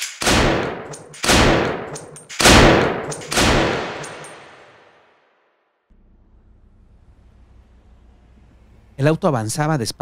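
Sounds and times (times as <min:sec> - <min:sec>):
loud booming gunshots in a neighborhood: 0:00.0 - 0:04.9
speech: 0:09.0 - 0:10.0.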